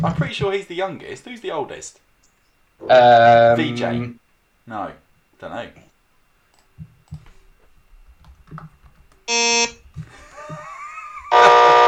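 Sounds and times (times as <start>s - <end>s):
speech: 0.0s - 2.1s, 2.8s - 5.9s, 8.5s - 8.7s, 9.3s - 10.7s
soft clicks: 6.5s - 7.3s
loud harsh electronic buzzer blasts: 9.3s - 9.8s, 11.2s - 11.8s
laughter: 10.0s - 11.7s.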